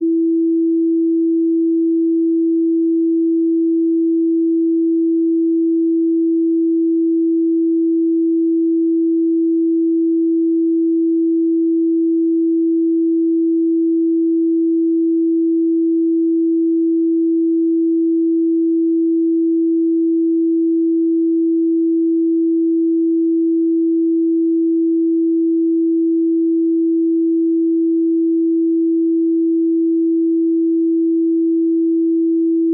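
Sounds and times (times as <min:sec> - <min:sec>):
330 Hz tone: 0:00.0 - 0:32.7.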